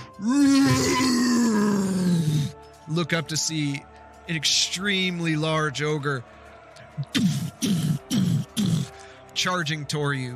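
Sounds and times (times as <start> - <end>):
speech: 0.2 - 0.5, 3.0 - 6.4, 7.0 - 8.1, 9.4 - 10.3
huge deep monster roar: 0.2 - 2.5.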